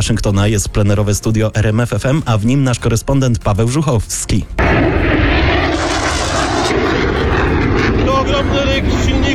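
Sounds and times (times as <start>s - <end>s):
speech: 0.0s - 5.1s
military jet aircraft passing overhead: 4.6s - 9.3s.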